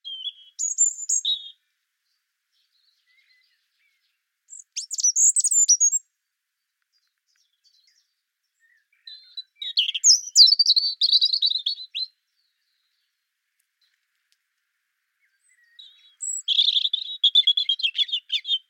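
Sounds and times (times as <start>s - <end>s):
European robin singing liquid trickling phrases: 0.0s - 14.0s, 15.1s - 18.6s.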